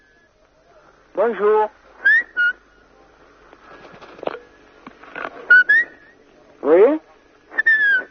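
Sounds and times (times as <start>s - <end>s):
speech: 1.2s - 1.8s
pet bird whistling: 2.0s - 2.6s, 5.5s - 6.2s, 7.5s - 8.1s.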